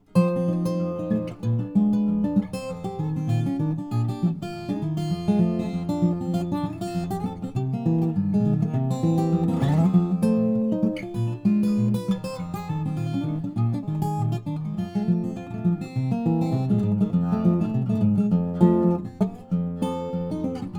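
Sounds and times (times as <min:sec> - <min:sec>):
1928 Dobro resonator guitar: 0:00.0 - 0:20.7.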